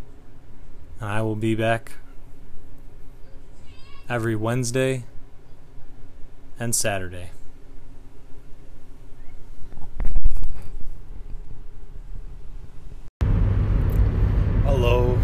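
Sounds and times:
speech: 0:01.0 - 0:02.0, 0:04.1 - 0:05.1, 0:06.6 - 0:07.4
car engine and road rumble from a car being driven to work: 0:12.9 - 0:15.2.

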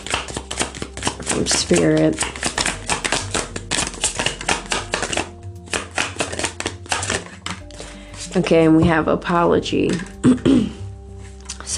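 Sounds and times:
tarot cards being drawn and handled from a deck: 0:00.0 - 0:07.8
steady low tonal background: 0:00.0 - 0:11.7
speech: 0:01.4 - 0:02.5, 0:08.4 - 0:10.8.

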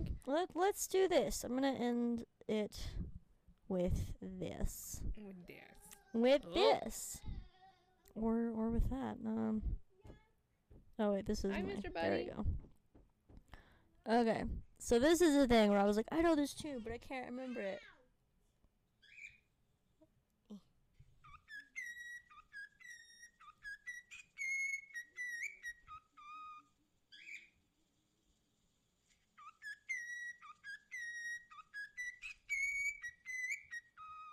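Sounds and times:
speech: 0:00.2 - 0:03.1, 0:03.7 - 0:07.4, 0:08.2 - 0:10.2, 0:11.0 - 0:12.6, 0:14.0 - 0:17.9
pet bird whistling a tune: 0:21.2 - 0:27.6, 0:29.4 - 0:34.3.

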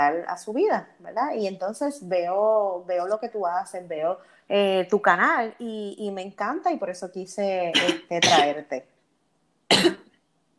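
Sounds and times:
speech: 0:00.0 - 0:08.9, 0:09.7 - 0:10.0
short sharp cough: 0:09.7 - 0:10.1.

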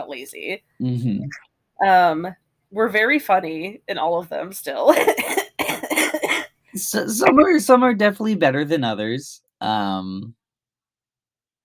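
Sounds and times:
speech: 0:00.0 - 0:05.4, 0:06.8 - 0:10.4
harsh raspy coughing: 0:04.9 - 0:06.5.

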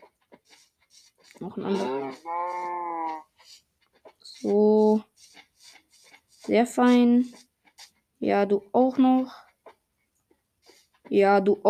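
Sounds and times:
speech: 0:01.4 - 0:02.6, 0:04.4 - 0:05.1, 0:06.5 - 0:07.4, 0:08.2 - 0:09.4, 0:11.1 - 0:11.6
cow mooing on a farm: 0:01.8 - 0:03.2.

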